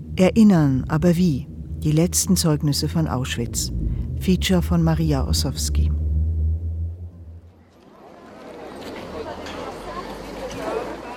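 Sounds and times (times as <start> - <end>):
deep engine rumble in visitor car park at Auschwitz: 0.0 - 11.0
speech: 0.2 - 6.0
crowd chatter in visitor car park at Auschwitz: 7.4 - 11.1.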